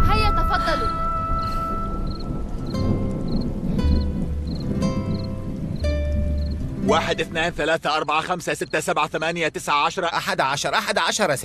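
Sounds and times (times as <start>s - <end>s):
faint repeating high chirps and tones: 0.0s - 8.8s
heavy rain: 0.0s - 11.4s
speech: 6.9s - 11.4s.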